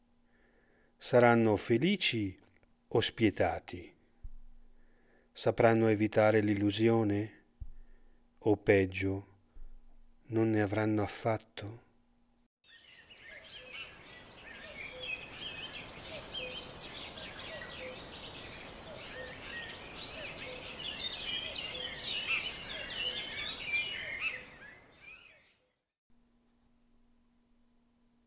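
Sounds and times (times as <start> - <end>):
speech: 1.0 - 4.0, 5.4 - 7.4, 8.4 - 9.3, 10.3 - 11.8
flock of sparrows chirping: 12.6 - 25.8.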